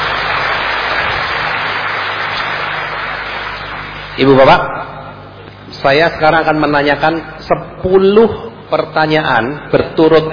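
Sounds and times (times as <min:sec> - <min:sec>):
audience applause at a talk: 0:00.0 - 0:04.2
speech: 0:04.2 - 0:04.8, 0:05.8 - 0:10.3.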